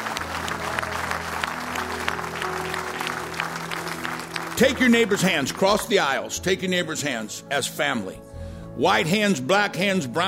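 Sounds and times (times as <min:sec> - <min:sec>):
room full of people clapping: 0:00.0 - 0:06.2
speech: 0:04.6 - 0:10.2.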